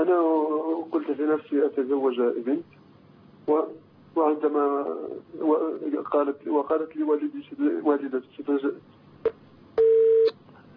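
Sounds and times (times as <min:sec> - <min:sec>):
speech: 0:00.0 - 0:09.4
telephone tone after a call is cut off: 0:09.8 - 0:10.3.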